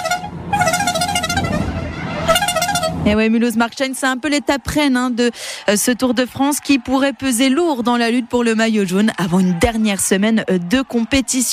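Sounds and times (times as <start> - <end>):
small horn of the Tour de France publicity caravan honking at a roadside stage: 0.0 - 3.2
speech: 3.1 - 11.5.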